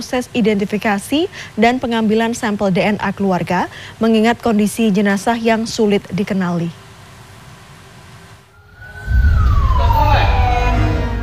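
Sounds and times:
speech: 0:00.0 - 0:06.8
ambulance sirens of a convoy under police escort in Palembang, Indonesia: 0:08.6 - 0:11.2.

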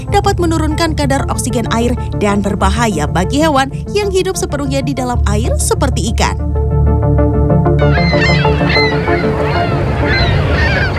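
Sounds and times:
speech: 0:00.2 - 0:10.2
ducks quacking on a pond: 0:07.8 - 0:10.9
geese honking on a pond: 0:07.8 - 0:10.9.

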